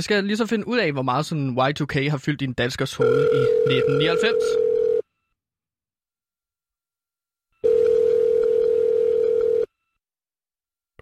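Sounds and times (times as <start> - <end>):
speech: 0.0 - 4.7
telephone ringing tone from an outgoing call: 3.0 - 5.1, 7.6 - 10.0.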